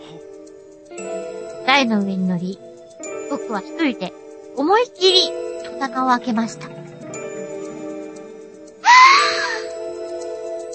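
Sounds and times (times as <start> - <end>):
speech: 1.8 - 2.7, 3.3 - 6.8
high-pitched human scream: 8.8 - 9.6.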